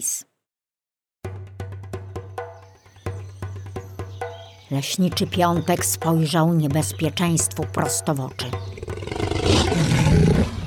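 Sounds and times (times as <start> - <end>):
speech: 0.0 - 0.3, 4.7 - 8.7
tiger roaring: 8.7 - 10.6.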